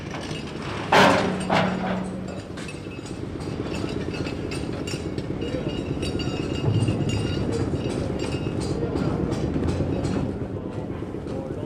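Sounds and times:
steady low rumble of traffic or a train in Dakar: 0.0s - 11.6s
faint voices in Dakar streets: 5.3s - 11.6s.

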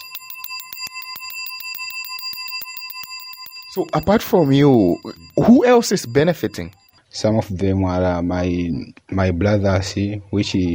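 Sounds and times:
battery-powered homemade doorbell ringing: 0.0s - 6.9s
speech: 3.7s - 10.7s.

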